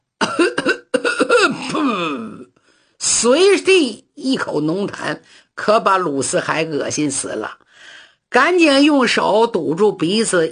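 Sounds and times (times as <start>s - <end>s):
old man coughing as he walks into a room: 0.2s - 2.4s
speech: 1.8s - 10.5s.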